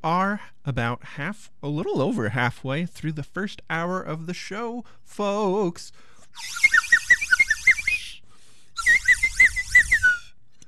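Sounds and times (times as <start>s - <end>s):
speech: 0.0s - 6.8s
slide whistle warbling up-and-down swoops: 6.3s - 8.2s, 8.8s - 10.4s.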